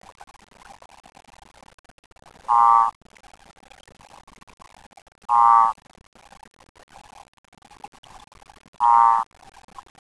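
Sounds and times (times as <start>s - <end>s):
Odontophrynus cordobae advertisement call at 19.7 C: 2.5s - 3.0s, 5.3s - 5.8s, 8.8s - 9.4s
speech: 2.5s - 3.0s, 5.3s - 5.8s, 8.8s - 9.3s.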